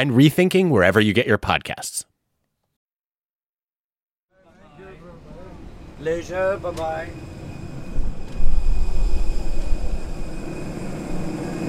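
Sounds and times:
speech: 0.0s - 2.1s, 6.0s - 7.3s
jet aircraft engine idling after landing at an airport in Namibia: 5.0s - 11.6s.

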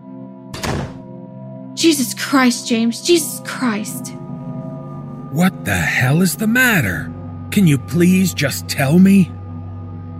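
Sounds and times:
heavy door slamming shut: 0.5s - 1.0s
speech: 1.8s - 4.2s, 5.3s - 9.4s.

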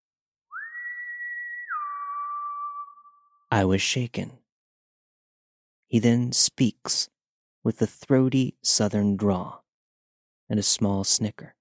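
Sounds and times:
person whistling two long steady notes: 0.5s - 3.3s
speech: 3.5s - 4.4s, 5.9s - 9.6s, 10.5s - 11.5s.

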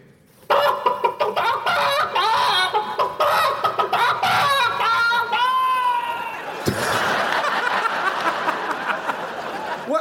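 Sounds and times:
distressed chicken clucking frantically: 0.5s - 5.8s
laughter: 0.5s - 9.9s.

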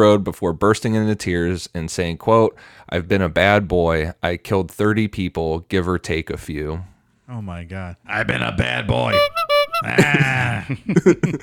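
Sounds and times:
speech: 0.0s - 11.4s
little novelty horn sound effect: 8.4s - 10.7s
laughter: 9.1s - 11.4s.

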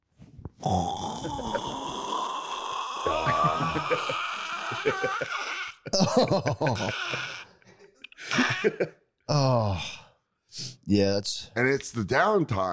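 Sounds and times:
speech: 0.6s - 1.8s, 3.0s - 7.4s, 8.4s - 12.7s
person imitating a man snoring: 0.6s - 5.8s
laughter: 3.1s - 9.0s.

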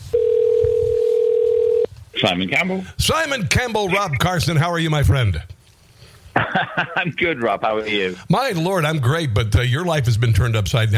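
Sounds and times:
telephone dial tone before call connects: 0.2s - 1.9s
speech: 2.2s - 5.6s, 6.6s - 10.9s
laughter: 6.4s - 7.4s.

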